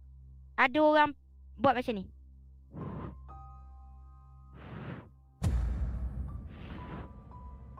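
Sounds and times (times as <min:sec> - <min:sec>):
speech: 0:00.6 - 0:02.8
voice imitating someone blowing breathily into an ear: 0:02.7 - 0:03.2
brief thump: 0:05.4 - 0:07.1.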